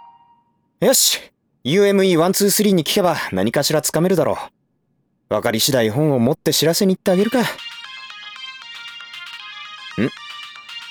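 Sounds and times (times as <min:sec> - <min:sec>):
mobile phone ringtone announcing an incoming call: 0:00.0 - 0:00.5, 0:07.2 - 0:10.9
speech: 0:00.8 - 0:04.6, 0:05.3 - 0:07.7, 0:10.0 - 0:10.2.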